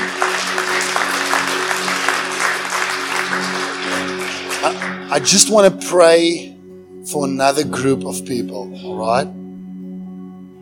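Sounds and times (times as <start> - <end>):
audience applauding: 0.0 - 6.1
speech: 4.7 - 6.5, 7.1 - 9.4.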